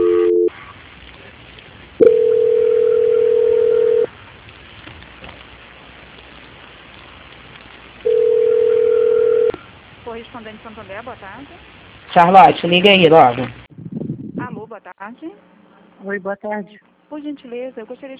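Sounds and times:
steady single-pitch telephone tone during a call transfer: 0:00.0 - 0:00.5, 0:02.0 - 0:04.1, 0:08.1 - 0:09.6
faint hissing telephone line noise: 0:00.0 - 0:18.1
speech: 0:10.7 - 0:13.6, 0:15.2 - 0:18.1.

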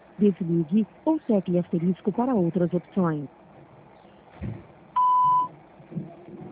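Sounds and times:
faint low rumbling: 0:00.0 - 0:06.5
speech: 0:00.2 - 0:03.4
voicemail recording electronic beep tone: 0:05.0 - 0:05.5.

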